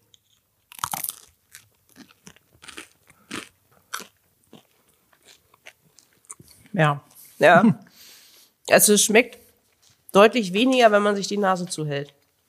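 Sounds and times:
chewing crunches of bread: 0:00.1 - 0:07.2
crunchy bite into bread: 0:00.3 - 0:06.4
speech: 0:06.8 - 0:07.9, 0:08.7 - 0:09.4, 0:10.1 - 0:12.4.

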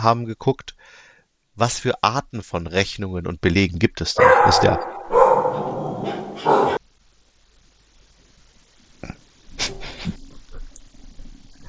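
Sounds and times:
speech: 0:00.0 - 0:01.0, 0:01.6 - 0:05.7
dog barking in a house: 0:04.2 - 0:06.8.

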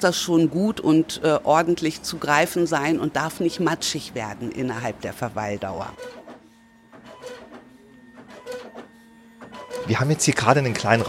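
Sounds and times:
speech: 0:00.0 - 0:06.2, 0:09.9 - 0:11.0
printer printing small cards: 0:03.0 - 0:11.0.

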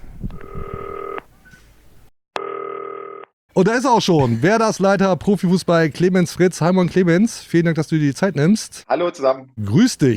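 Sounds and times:
telephone ringback tone on an outgoing call: 0:00.4 - 0:01.2, 0:02.4 - 0:03.2
speech: 0:03.6 - 0:10.1.

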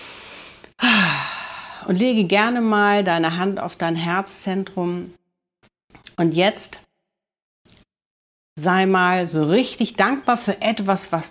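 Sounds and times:
deep breath in then out through the mouth during a guided gratitude exercise: 0:00.0 - 0:01.9
speech: 0:01.8 - 0:05.2, 0:06.2 - 0:06.8, 0:08.6 - 0:11.2.

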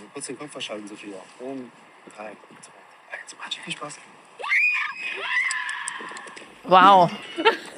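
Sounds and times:
speech: 0:00.2 - 0:04.2, 0:06.0 - 0:07.6
loud shrill horror-film style scream: 0:04.4 - 0:06.2.

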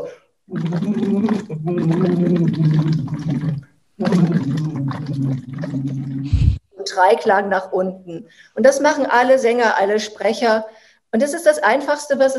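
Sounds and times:
speech: 0:00.1 - 0:12.3
voiced humming blown through a tube into a water bottle: 0:00.5 - 0:06.6.

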